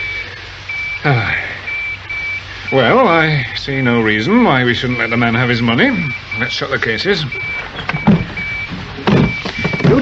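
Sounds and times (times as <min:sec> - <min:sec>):
high thin electronic beep from a pocket tracking receiver: 0:00.0 - 0:03.2, 0:04.4 - 0:10.0
low hum: 0:00.0 - 0:10.0
speech: 0:01.0 - 0:01.4, 0:02.7 - 0:08.0.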